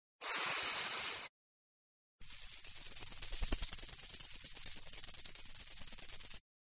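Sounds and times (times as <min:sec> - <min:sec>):
snake in the jungle hissing: 0:00.2 - 0:01.3.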